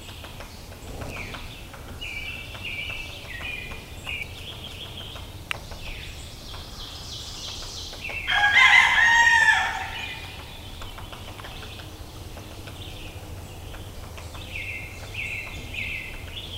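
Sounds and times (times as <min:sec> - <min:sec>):
thin whistled birdsong: 0:00.0 - 0:16.5
rooster crowing: 0:08.3 - 0:10.4.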